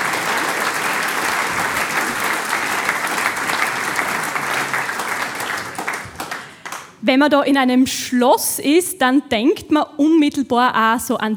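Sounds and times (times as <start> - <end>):
sizable audience applauding: 0.0 - 7.0
speech: 7.0 - 11.3.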